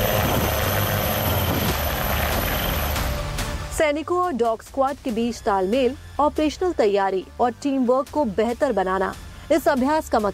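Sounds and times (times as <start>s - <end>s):
Army Dhruv helicopter rotor thump and engine roar: 0.0s - 3.5s
speech: 3.8s - 10.3s.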